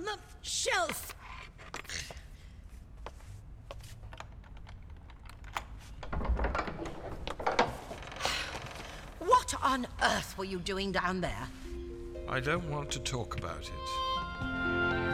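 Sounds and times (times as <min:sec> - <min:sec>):
speech: 0:00.1 - 0:01.2, 0:09.7 - 0:11.7, 0:12.3 - 0:14.5
key rattling and clicking in a lock: 0:04.0 - 0:07.8
door swinging open with a heavy thump and rumble: 0:04.3 - 0:09.2.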